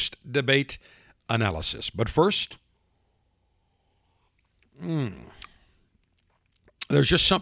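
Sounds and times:
speech: 0.0s - 2.6s, 4.8s - 5.4s, 6.9s - 7.4s
bourbon sipped from a glass: 4.0s - 6.9s.

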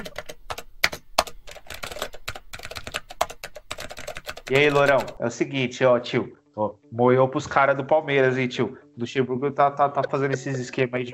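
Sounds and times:
typing on a computer keyboard: 0.0s - 5.2s
speech: 4.5s - 11.1s.

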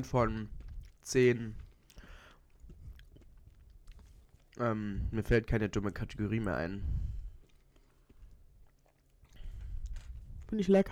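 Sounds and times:
speech: 0.0s - 1.6s, 4.6s - 7.1s, 10.5s - 10.9s
biting and chewing a chocolate-flavoured snack: 0.5s - 4.6s, 7.2s - 10.6s.

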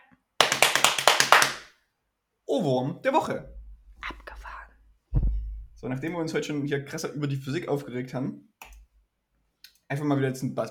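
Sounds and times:
hands slapping on thighs in a drumming rhythm: 0.4s - 1.7s
speech: 2.5s - 3.5s, 5.8s - 8.7s, 9.9s - 10.6s.

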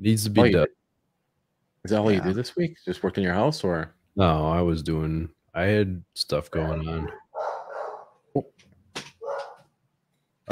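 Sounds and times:
speech: 0.0s - 0.8s, 1.8s - 7.2s, 8.4s - 8.6s
dogs barking at the front of a house: 6.9s - 8.2s, 9.2s - 9.7s.

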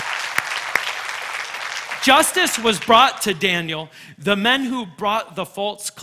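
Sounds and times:
crowd applause: 0.0s - 3.4s
sharp loud claps: 0.0s - 3.5s
speech: 2.0s - 6.0s.

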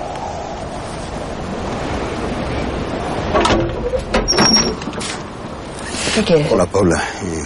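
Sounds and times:
steady hiss of noise: 0.0s - 7.4s
woman opening the door of a house: 3.3s - 5.3s
brief high squeak of the swinging door: 3.5s - 5.2s
speech: 6.2s - 7.4s.

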